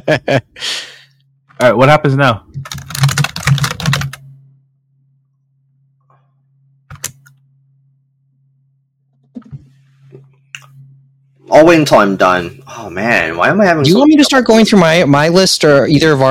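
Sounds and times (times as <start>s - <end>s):
steady low electrical hum: 0.0s - 16.2s
speech: 0.1s - 0.9s, 1.6s - 2.5s, 11.5s - 16.2s
computer keyboard typing: 2.6s - 4.3s, 6.9s - 7.4s.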